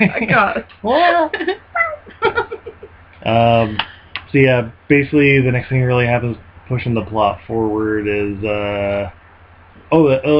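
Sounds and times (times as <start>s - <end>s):
speech: 0.0s - 1.7s, 3.2s - 9.2s, 9.9s - 10.3s
people laughing: 1.2s - 3.8s
cat meowing: 1.8s - 2.1s.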